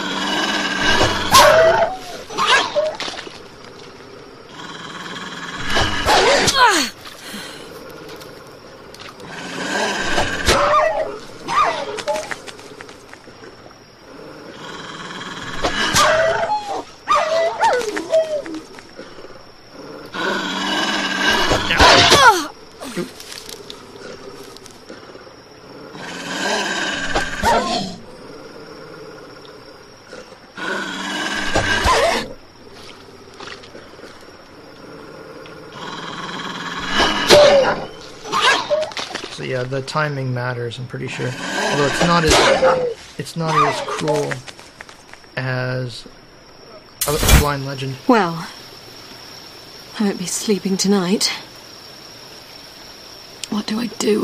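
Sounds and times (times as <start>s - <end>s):
wolves snarling and yelping: 0.0s - 3.4s, 4.5s - 8.5s, 9.2s - 12.9s, 14.0s - 22.6s, 25.7s - 29.2s, 30.1s - 39.3s, 41.3s - 44.0s
wolves growling and barking: 0.0s - 6.6s, 7.6s - 12.9s, 14.0s - 22.3s, 23.7s - 39.4s, 41.2s - 44.3s
low steady hum of game audio: 0.0s - 54.2s
speech: 39.7s - 44.5s, 47.4s - 48.5s, 50.0s - 51.4s, 54.0s - 54.2s.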